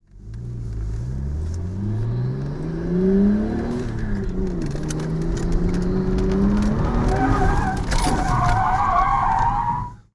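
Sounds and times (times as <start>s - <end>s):
Nissan Skyline car accelerating fast, heard from inside: 0.1s - 9.5s
Nissan Skyline car spinning out and skidding: 6.6s - 10.0s.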